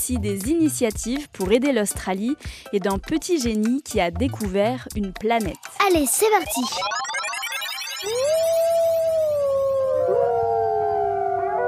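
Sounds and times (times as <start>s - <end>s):
speech: 0.0s - 7.1s, 8.0s - 8.4s
wolves howling: 8.8s - 11.6s.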